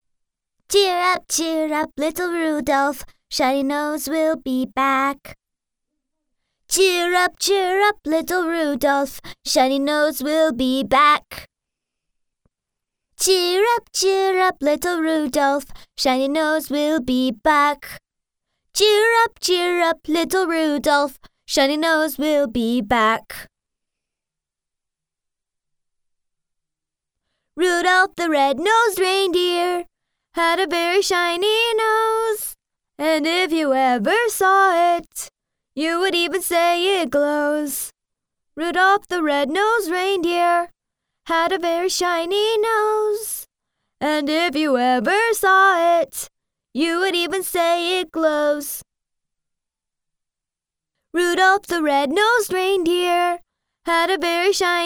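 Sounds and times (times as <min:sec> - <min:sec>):
foreign woman singing a children's song in American English: 0:00.7 - 0:05.4, 0:06.7 - 0:11.5, 0:13.2 - 0:18.0, 0:18.8 - 0:23.5, 0:27.6 - 0:37.9, 0:38.6 - 0:40.7, 0:41.3 - 0:48.8, 0:51.2 - 0:54.8.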